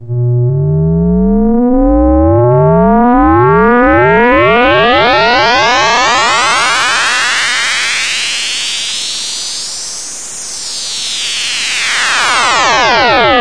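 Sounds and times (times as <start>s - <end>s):
Moog synthesizer powering up and down: 0.0s - 7.9s, 11.6s - 13.3s.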